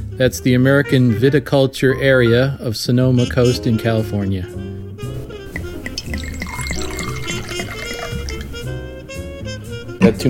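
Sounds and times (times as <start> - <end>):
speech: 0.2 - 4.8, 10.1 - 10.2
red wine pouring into a glass: 5.2 - 10.0.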